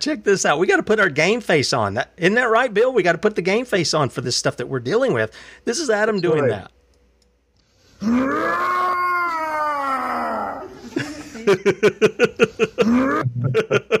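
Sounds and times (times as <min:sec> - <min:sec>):
speech: 0:00.0 - 0:06.8, 0:08.0 - 0:08.8, 0:11.5 - 0:13.9
man imitating an animal with a howl-like cry: 0:08.0 - 0:10.9
man imitating animal growls: 0:08.0 - 0:10.9, 0:12.8 - 0:13.6
laughter: 0:10.8 - 0:13.9.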